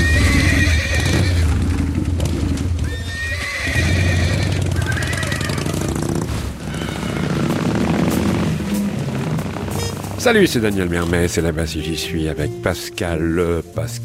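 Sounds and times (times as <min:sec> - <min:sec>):
agitated thoroughbred horses whinnying at a horse auction: 0:00.0 - 0:10.2
clatter of horse hooves at a horse auction: 0:00.0 - 0:12.7
speech: 0:10.2 - 0:14.0.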